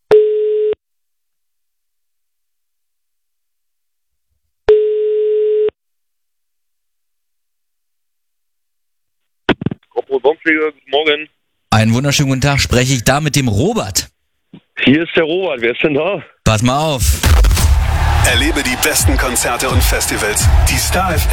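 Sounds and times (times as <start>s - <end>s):
telephone ringback tone as a call is placed: 0.1s - 0.8s, 4.7s - 5.8s
speech: 10.2s - 14.1s, 14.8s - 17.5s, 18.2s - 21.3s.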